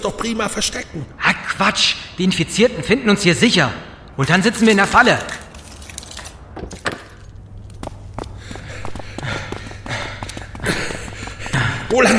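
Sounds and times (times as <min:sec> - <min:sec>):
speech: 0:00.0 - 0:05.4, 0:12.0 - 0:12.1
heavy breathy panting in a museum: 0:08.2 - 0:12.1.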